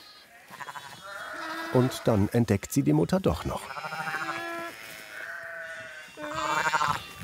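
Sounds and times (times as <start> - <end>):
shepherdess imitating lamb bleats to lure a ewe: 0.5 - 2.4, 3.4 - 7.2
speech: 1.7 - 3.9.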